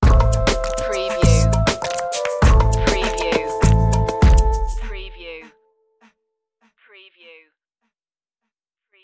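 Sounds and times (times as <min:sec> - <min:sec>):
Bollywood beat sting: 0:00.0 - 0:05.2.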